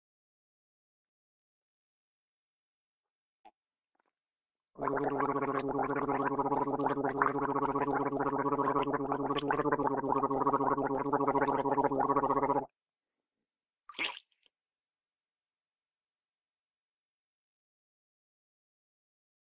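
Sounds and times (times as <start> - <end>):
person gargling: 4.8 - 12.7.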